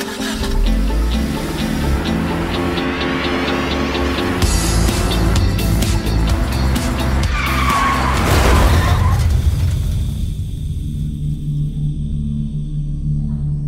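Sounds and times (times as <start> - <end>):
car tires screeching in a skid: 0.2 - 10.2
low engine-like rumble: 0.2 - 13.6
car crash jolt: 6.6 - 11.2.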